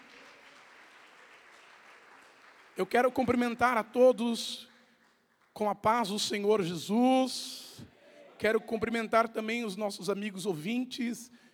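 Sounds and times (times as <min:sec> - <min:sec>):
congregation clapping during a church worship service: 0:00.0 - 0:07.3
speech: 0:02.8 - 0:04.7, 0:05.6 - 0:11.4.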